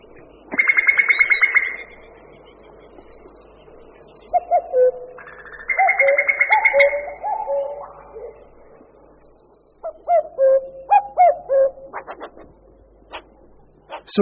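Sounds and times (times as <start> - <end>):
common cuckoo calling: 0.5 - 2.0, 4.2 - 9.0, 9.8 - 12.5.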